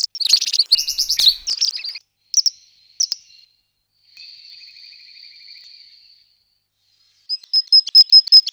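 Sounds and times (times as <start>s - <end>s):
bird song with dense high twittering, buzzy phrases and thin high trill: 0.0s - 2.0s.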